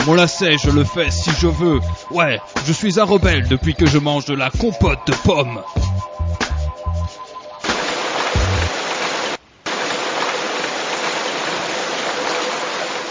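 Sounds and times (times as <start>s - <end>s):
speech: 0.1s - 5.8s
steady dense rain falling: 7.6s - 13.0s.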